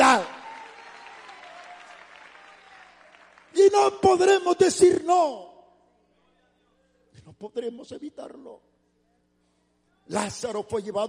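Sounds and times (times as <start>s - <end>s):
congregation applauding at a religious service: 0.0s - 4.4s
speech: 3.9s - 5.5s, 7.4s - 8.7s, 10.1s - 11.0s.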